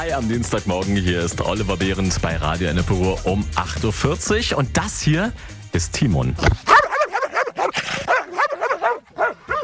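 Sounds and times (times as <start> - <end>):
speech: 0.1 - 6.7
animal shelter dog barking rapidly: 6.7 - 9.6.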